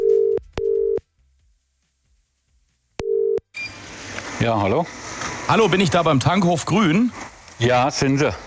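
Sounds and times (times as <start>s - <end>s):
telephone ringing tone down the line after dialing a petrol station: 0.0s - 1.0s, 3.0s - 3.4s
speech: 4.4s - 8.4s.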